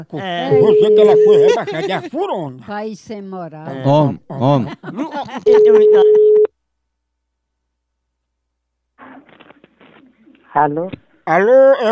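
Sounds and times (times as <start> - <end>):
laughter: 0.0 - 2.5, 3.7 - 6.4
speech: 0.0 - 6.0, 10.6 - 11.9
telephone ringback beep of an outgoing call: 0.5 - 1.6, 5.5 - 6.5.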